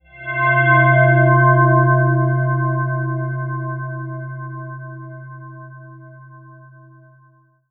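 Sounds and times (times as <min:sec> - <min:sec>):
tubular bell pad on note C4: 0:00.0 - 0:07.6.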